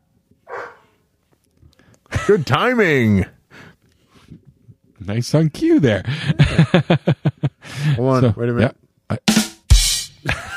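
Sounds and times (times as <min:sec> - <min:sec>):
dog barking: 0:00.5 - 0:01.0
laughter: 0:02.1 - 0:02.5, 0:06.0 - 0:08.2, 0:10.2 - 0:10.5
speech: 0:02.3 - 0:03.4, 0:05.1 - 0:08.8.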